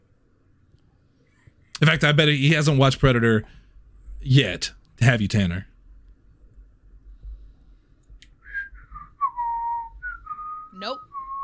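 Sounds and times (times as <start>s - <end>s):
low rumble: 1.3s - 11.4s
speech: 1.8s - 3.6s, 4.2s - 5.7s
person whistling: 8.4s - 11.4s.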